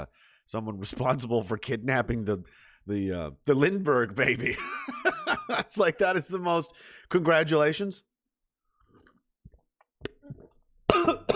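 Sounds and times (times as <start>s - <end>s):
speech: 0.0s - 8.1s
person coughing after inhaling coffee: 10.9s - 11.3s.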